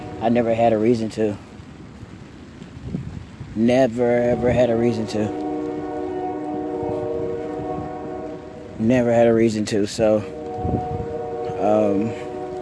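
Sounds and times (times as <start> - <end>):
train horn blaring: 0.0 - 0.9, 4.0 - 12.6
light wind: 0.0 - 12.6
speech: 0.2 - 1.5, 3.6 - 5.4, 8.8 - 10.9, 11.6 - 12.2.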